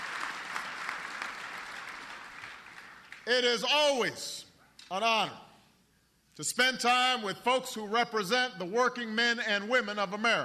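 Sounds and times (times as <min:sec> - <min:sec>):
sustained applause from a large audience: 0:00.0 - 0:03.2
speech: 0:03.3 - 0:05.4, 0:06.4 - 0:10.4.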